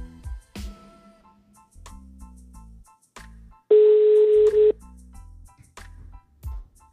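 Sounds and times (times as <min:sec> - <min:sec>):
outgoing telephone call ringback tone: 0:03.7 - 0:04.7.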